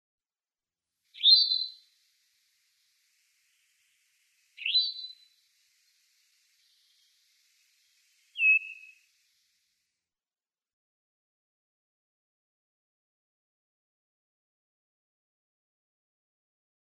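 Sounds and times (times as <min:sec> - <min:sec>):
Eastern Towhee call: 0:01.1 - 0:01.9, 0:04.6 - 0:05.4, 0:08.3 - 0:09.1.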